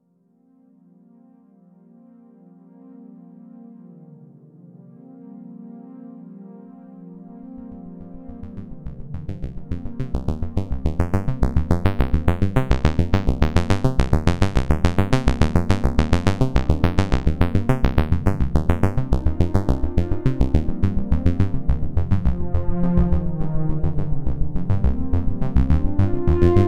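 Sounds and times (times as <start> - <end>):
notch-filtered synthesizer strings: 7.4 - 26.6.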